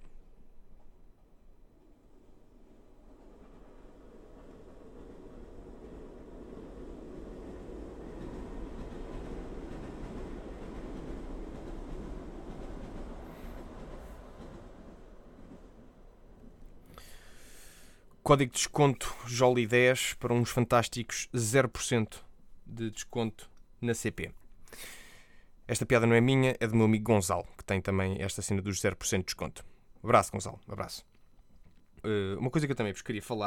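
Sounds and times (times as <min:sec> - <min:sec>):
train rumbling past: 0:01.1 - 0:20.5
speech: 0:18.3 - 0:25.0, 0:25.7 - 0:31.1, 0:32.0 - 0:33.4.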